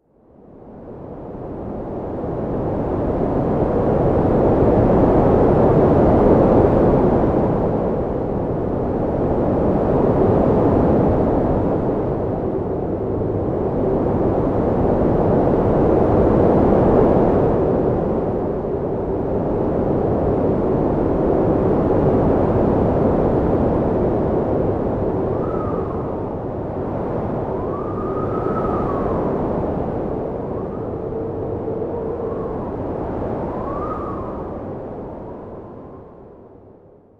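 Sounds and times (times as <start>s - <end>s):
arctic wind: 0.0s - 37.1s.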